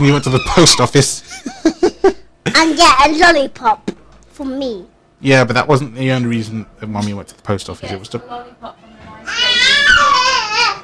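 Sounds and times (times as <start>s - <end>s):
young girl crying in a tantrum: 0.0s - 1.0s, 9.2s - 10.8s
speech: 0.0s - 9.5s.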